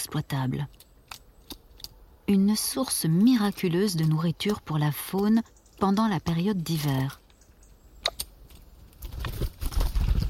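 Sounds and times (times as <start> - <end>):
speech: 0.0 - 0.9, 2.3 - 7.2
great spotted woodpecker hammering a walnut wedged in an ash tree crack in the Drôme, France: 0.6 - 8.7.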